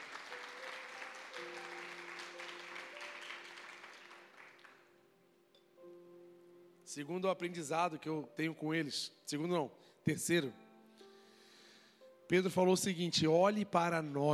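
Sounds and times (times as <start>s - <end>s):
large crowd applauding: 0.0s - 4.9s
speech: 6.9s - 10.6s, 12.3s - 14.3s.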